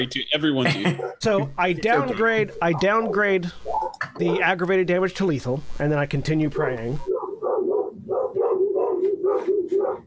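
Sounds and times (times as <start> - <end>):
speech: 0.0 - 7.1
laughter: 0.6 - 2.6
dogs barking: 0.9 - 1.3, 2.4 - 4.6, 7.0 - 10.0.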